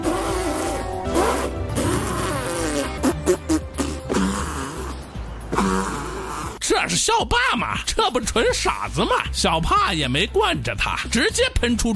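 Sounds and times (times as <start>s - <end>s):
buzzy sputtering fart sounds: 0.0s - 6.6s
speech: 6.8s - 11.9s.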